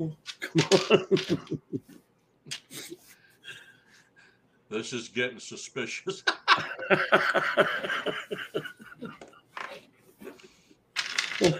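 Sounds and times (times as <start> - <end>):
speech: 0.0 - 3.0, 4.7 - 9.8, 11.4 - 11.5
dice rattling and clattering: 0.2 - 1.4, 11.0 - 11.5
laughter: 0.4 - 2.0, 6.1 - 9.4.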